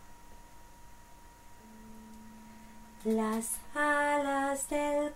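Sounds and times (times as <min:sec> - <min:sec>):
alto melody: 0:01.6 - 0:05.0.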